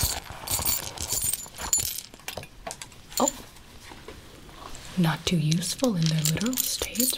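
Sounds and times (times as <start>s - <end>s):
small metallic clinks and jingles: 0.0s - 3.5s, 5.8s - 7.1s
speech: 5.0s - 7.1s.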